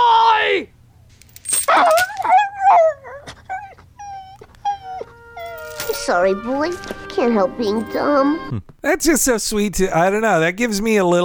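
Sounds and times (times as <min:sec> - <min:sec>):
low hum: 0:00.0 - 0:11.2
dog chain being pulled: 0:01.1 - 0:02.4, 0:05.4 - 0:06.2
dog whining and yipping during sit training: 0:01.6 - 0:06.2
speech: 0:06.1 - 0:11.2.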